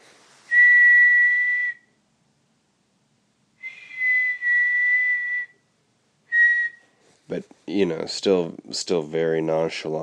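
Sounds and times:
person whistling while strolling down a street: 0.5s - 2.0s, 3.6s - 5.7s, 6.3s - 7.0s
speech: 7.3s - 10.0s.

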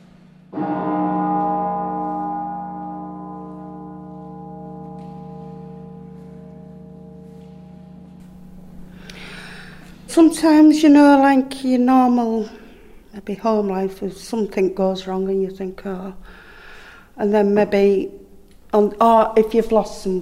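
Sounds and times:
church bell striking and ringing: 0.1s - 12.8s
speech: 10.2s - 12.6s, 13.2s - 16.4s, 17.2s - 20.1s.

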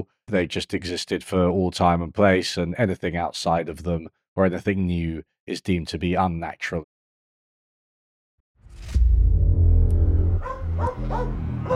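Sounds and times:
speech: 0.0s - 6.9s
heavy rumbling noise: 8.7s - 11.7s
dog barking: 10.4s - 11.7s.

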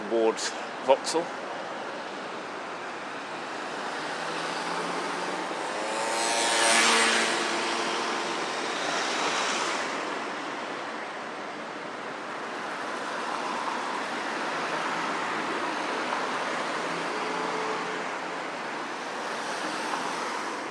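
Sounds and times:
road traffic at a pedestrian crossing at the end of Vauxhall Bridge Road: 0.0s - 20.7s
speech: 0.1s - 1.5s
louder vehicle surging past with engine whine: 3.4s - 10.4s.

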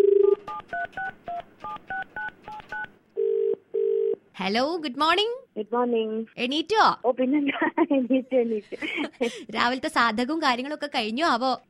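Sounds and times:
two-note telephone keypad beeps: 0.0s - 2.9s
telephone dial tone: 0.0s - 4.2s
speech: 4.4s - 11.6s.

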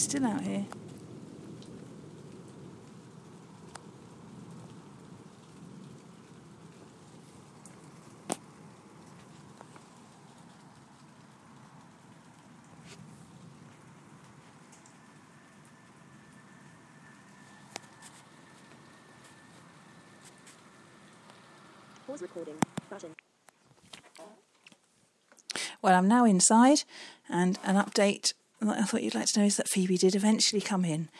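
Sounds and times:
speech: 0.0s - 0.9s, 22.1s - 23.2s, 25.8s - 31.1s
soft thunder rumbling outdoors: 0.0s - 23.2s
constant rain: 0.0s - 31.1s.

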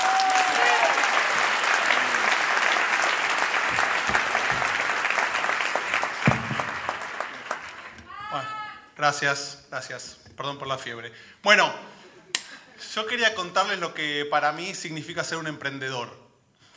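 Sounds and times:
large audience applause: 0.0s - 8.0s
speech: 9.0s - 11.9s, 12.9s - 16.2s.

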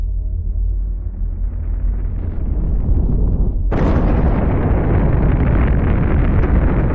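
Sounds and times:
deep rumble: 0.0s - 6.9s
loud explosion with sustained roaring blast: 2.0s - 6.9s.

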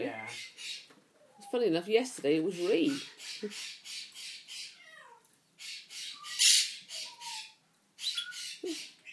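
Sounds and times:
Quaker parrots squawking: 0.0s - 0.9s, 2.5s - 5.0s, 5.6s - 9.1s
speech: 1.5s - 3.8s
Quaker parrot screech: 6.0s - 7.6s
Quaker parrot whistling calls: 6.0s - 8.6s.

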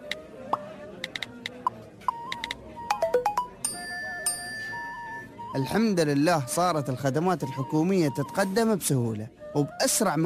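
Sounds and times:
faint murmur: 0.0s - 10.2s
phone notification chime from a government authority's app: 2.9s - 5.2s
speech: 5.5s - 10.2s.

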